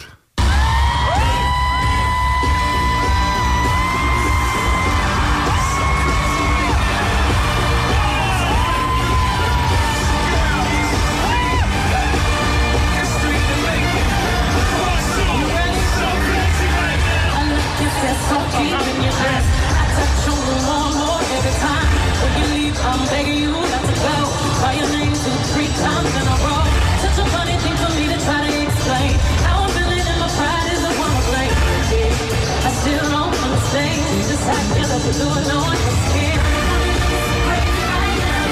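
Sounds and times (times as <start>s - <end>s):
amplified vocals and music at a live stadium concert: 0.0s - 38.5s
huge stadium crowd cheering, yelling and whooping: 0.4s - 22.4s.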